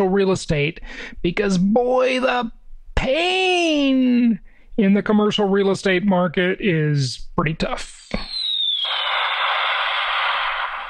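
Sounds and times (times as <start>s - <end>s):
speech: 0.0s - 8.3s
high descending whistle of a bomb-drop effect: 8.2s - 10.8s
loud sustained roaring blast of a bomb-drop effect: 8.5s - 10.8s.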